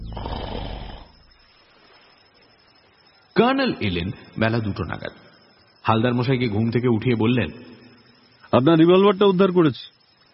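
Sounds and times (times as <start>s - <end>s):
man snoring while asleep: 0.0s - 1.2s
speech: 3.4s - 7.8s, 8.5s - 9.9s.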